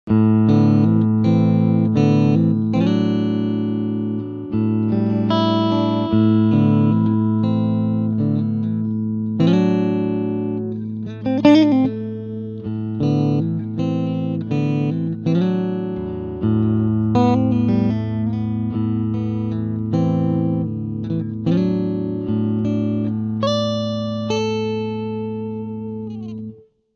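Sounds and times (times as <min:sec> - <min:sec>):
clean dorian blues music: 0:00.1 - 0:26.7.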